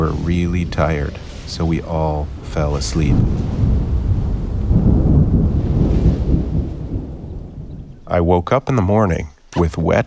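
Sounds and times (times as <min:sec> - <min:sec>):
speech: 0:00.0 - 0:03.7, 0:08.1 - 0:10.0
wind heard from inside tents: 0:00.0 - 0:10.0
deep loud thunder rolling heard from inside tents: 0:00.7 - 0:08.0.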